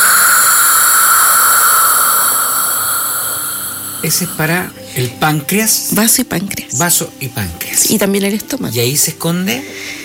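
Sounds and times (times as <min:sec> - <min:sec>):
voice exhaling a continuous Spanish jota sound as a healing sound: 0:00.0 - 0:04.9
speech: 0:04.0 - 0:10.0.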